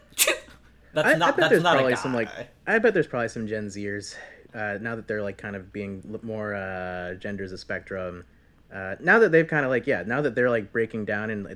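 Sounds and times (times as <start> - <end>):
person imitating a cute little sneeze: 0.0 - 0.7
speech: 0.9 - 11.5.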